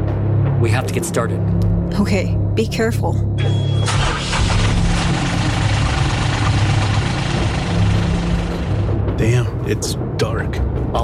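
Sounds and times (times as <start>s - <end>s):
speech: 0.6s - 4.0s, 9.2s - 11.0s
car engine idling in a dark parking lot: 3.9s - 9.0s.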